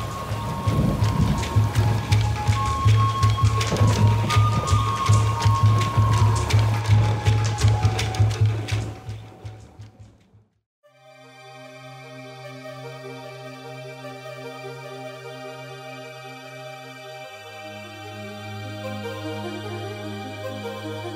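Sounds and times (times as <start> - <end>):
heavy rain pouring: 0.0 - 9.2
deep continuous rumble of thunder: 0.0 - 10.0
drips and splashes: 0.0 - 10.2.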